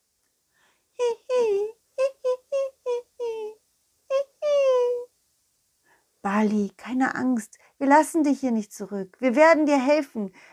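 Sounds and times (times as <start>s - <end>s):
soft high-pitched squeaking whimpers: 1.0s - 5.1s
speech: 6.2s - 10.5s.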